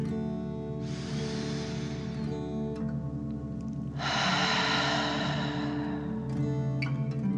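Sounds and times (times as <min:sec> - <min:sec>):
soft steady music bed: 0:00.0 - 0:07.3
deep breaths in and out during a children's guided breathing exercise: 0:00.8 - 0:02.8, 0:03.9 - 0:07.1.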